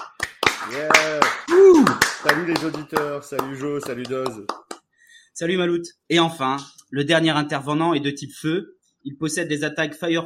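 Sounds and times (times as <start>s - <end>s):
people clapping: 0.0s - 4.9s
speech: 0.6s - 4.6s, 5.4s - 10.2s
person whooping: 0.7s - 2.1s.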